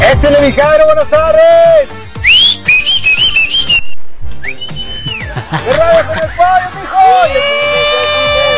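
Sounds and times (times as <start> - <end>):
speech: 0.2 - 2.0, 5.7 - 7.9
person whistling a wavering, sliding melody: 2.2 - 5.3
laughter: 5.0 - 8.5.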